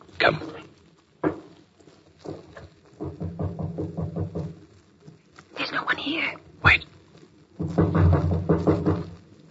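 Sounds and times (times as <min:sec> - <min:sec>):
speech: 0:00.2 - 0:00.6
knocking on a wooden door at the end of a dark passageway: 0:01.2 - 0:01.5, 0:03.0 - 0:04.6, 0:07.6 - 0:09.2
heavy thuds: 0:02.2 - 0:04.8, 0:07.6 - 0:09.4.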